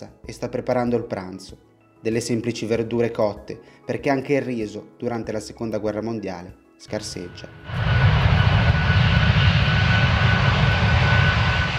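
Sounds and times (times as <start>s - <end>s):
speech: 0.0s - 8.1s
heavy propeller engines of three US aircraft including a B-29 bomber: 7.0s - 11.7s.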